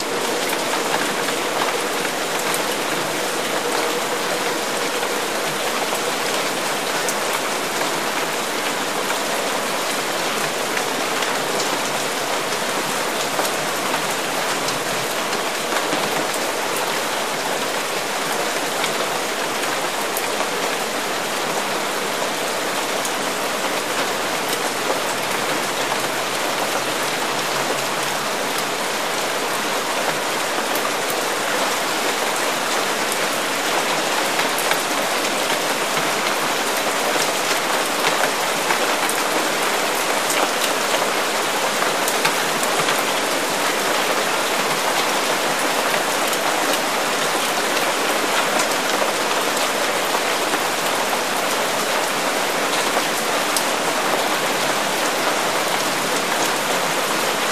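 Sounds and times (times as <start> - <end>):
heavy rain on grass: 0.0 - 57.4.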